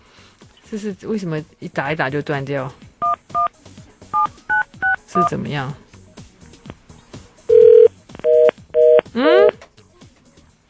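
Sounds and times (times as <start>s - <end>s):
speech: 0.7s - 2.8s, 5.2s - 5.8s
faint chatter: 3.4s - 10.6s
telephone keypad tones: 7.5s - 9.6s.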